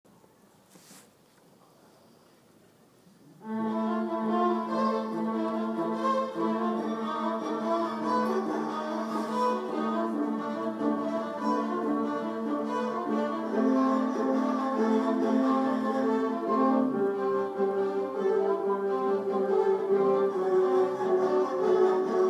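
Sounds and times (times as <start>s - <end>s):
viola quartet playing: 3.4s - 22.2s.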